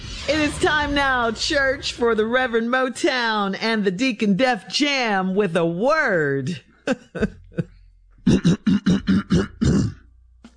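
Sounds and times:
speech: 0.3 - 7.7, 8.3 - 10.0
person clearing throat: 6.9 - 10.1.

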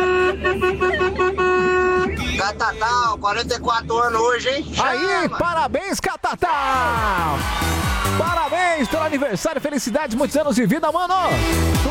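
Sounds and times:
car horn sound effect: 0.0 - 2.7
speech: 2.6 - 11.9.

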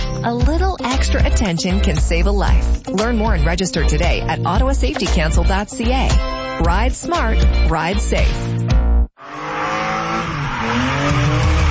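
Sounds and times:
speech: 0.2 - 8.6
stock car engines roaring on a stadium road circuit: 9.2 - 11.6
stock car tire squeal on a stadium road circuit: 9.2 - 11.6.

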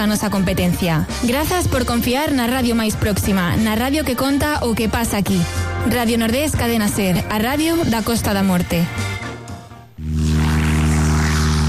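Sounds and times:
speech: 0.0 - 9.1
small propeller plane engine drone: 10.0 - 11.6.

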